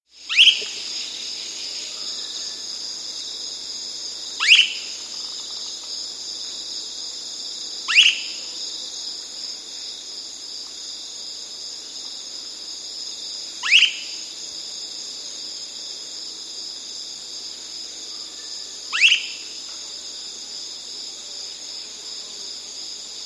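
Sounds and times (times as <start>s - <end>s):
Ash-throated gnateater call in South America: 0.3s - 0.8s, 4.4s - 4.9s, 19.0s - 19.4s.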